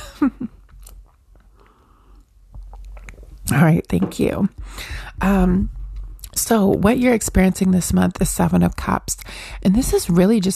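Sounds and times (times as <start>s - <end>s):
speech: 0.2s - 0.5s, 3.5s - 5.8s, 6.4s - 10.5s
person sipping coffee: 0.6s - 3.4s.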